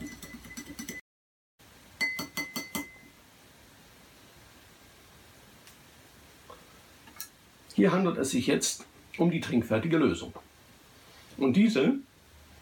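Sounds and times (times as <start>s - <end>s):
soft hiss: 1.6s - 12.6s
spoon stirring a supplement briskly in a glass: 2.0s - 3.1s
speech: 7.8s - 10.4s, 11.4s - 12.0s.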